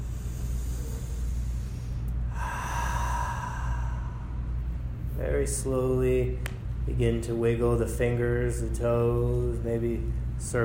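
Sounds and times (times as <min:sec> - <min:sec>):
deep breath in through the nose and out through the mouth during guided relaxation: 0:00.0 - 0:05.1
speech: 0:05.4 - 0:10.6.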